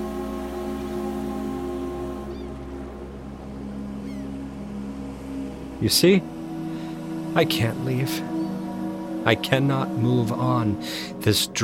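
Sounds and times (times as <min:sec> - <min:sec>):
rumble of a ferry pulling away from a wharf: 0:00.0 - 0:11.3
faint gull-like cries: 0:02.1 - 0:02.6, 0:03.9 - 0:04.5
speech: 0:05.8 - 0:06.4, 0:07.4 - 0:08.3, 0:09.2 - 0:11.6.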